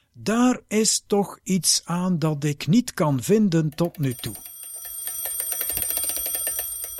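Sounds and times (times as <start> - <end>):
speech: 0.2 - 4.5
mechanical alarm clock with a faulty alarm ringing while being wound: 4.1 - 6.9.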